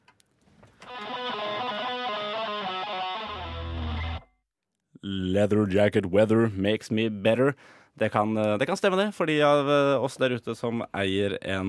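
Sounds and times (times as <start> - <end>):
song with distorted effects-heavy chords and low bass drone on radio: 0.8 - 4.2
speech: 5.1 - 11.6.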